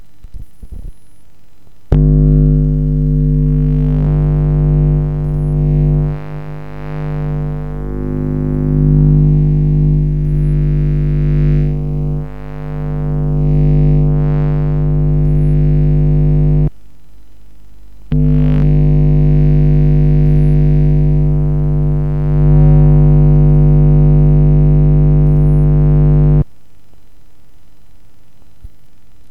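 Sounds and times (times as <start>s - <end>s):
microwave recorded with a telephone pickup: 1.9s - 16.7s, 18.1s - 26.4s.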